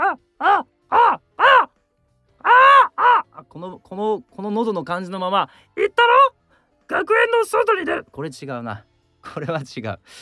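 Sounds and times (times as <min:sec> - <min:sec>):
voice imitating crow caws: 0:00.0 - 0:01.7, 0:02.4 - 0:03.5
speech: 0:03.6 - 0:06.4, 0:07.0 - 0:10.2.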